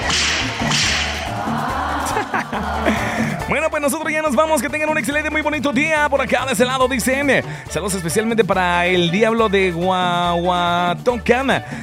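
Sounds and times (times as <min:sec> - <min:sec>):
loud whip lashes cracking: 0:00.0 - 0:01.7
laughter: 0:01.2 - 0:04.2
speech: 0:02.5 - 0:11.8.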